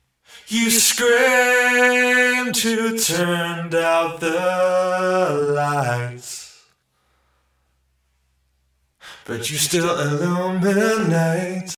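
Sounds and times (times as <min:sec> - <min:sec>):
processed vocal: 0:00.3 - 0:06.8, 0:09.0 - 0:11.7.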